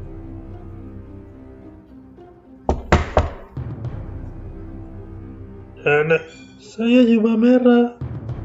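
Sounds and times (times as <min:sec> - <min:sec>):
soft steady music: 0:00.0 - 0:08.4
knocks on a wooden door: 0:02.7 - 0:03.6
speech: 0:05.8 - 0:08.0.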